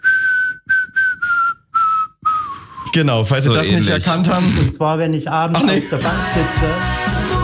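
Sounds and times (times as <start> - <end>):
person whistling a melody for blackbirds to copy: 0.0 - 3.0
speech: 2.9 - 7.3.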